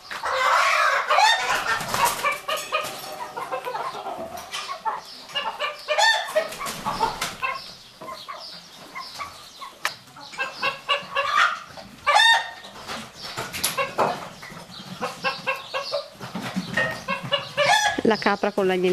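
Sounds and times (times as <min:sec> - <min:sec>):
hens clucking: 0:00.0 - 0:18.9
speech: 0:18.2 - 0:18.9.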